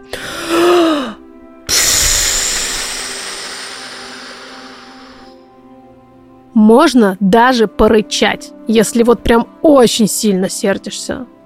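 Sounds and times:
deep slightly voiced inhale: 0.0 - 5.6
long loud breathy exhale: 0.1 - 5.5
speech: 6.6 - 11.4.

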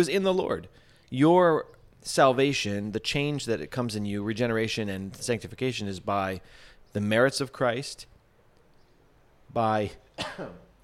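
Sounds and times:
speech: 0.0 - 8.1, 9.5 - 10.6
stifled cough: 10.2 - 10.8
throat clearing: 10.2 - 10.8.

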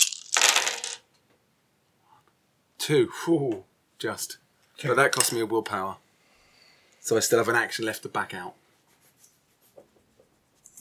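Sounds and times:
handful of dice clattering: 0.0 - 1.1
speech: 2.9 - 6.0, 7.0 - 8.6.

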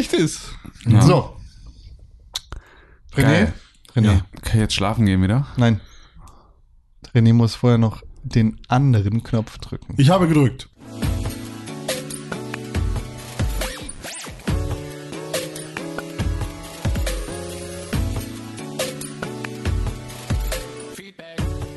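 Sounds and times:
speech: 0.0 - 1.4, 3.2 - 5.9, 7.0 - 11.1
podcast jingle music with sustained notes and rapid percussive hits: 10.8 - 21.7.

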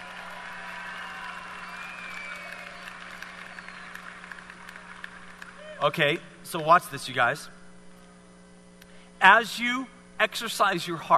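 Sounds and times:
audience applause as volunteers return to their seats: 0.0 - 5.7
low constant hum: 0.0 - 11.1
speech: 5.8 - 7.6, 9.2 - 11.1.

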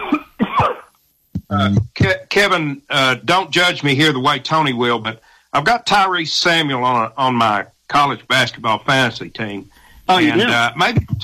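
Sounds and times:
man coughing: 0.0 - 0.9, 10.2 - 10.6
speech: 1.6 - 11.2.

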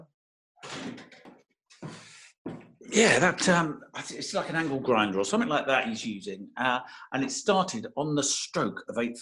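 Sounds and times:
back door scraping and clattering as it is shut: 0.6 - 1.4
back door being shut: 0.6 - 2.8
speech: 3.0 - 9.2.

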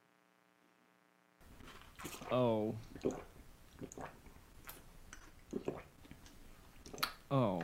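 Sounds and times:
ASMR chewing of tapioca balls: 1.6 - 7.6
gulping swallow: 1.7 - 6.2, 6.8 - 7.6
speech: 2.0 - 4.2, 7.3 - 7.6.

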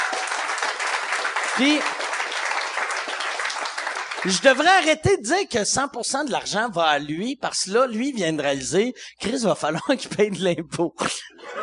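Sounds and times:
audience applause: 0.0 - 4.7
speech: 1.6 - 2.0, 4.2 - 11.3
laughter: 11.3 - 11.6.

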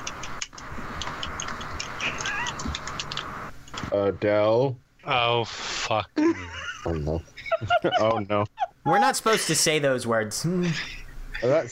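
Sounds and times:
cat meowing: 2.0 - 2.7
speech: 3.9 - 11.7
laughter: 6.2 - 9.6.

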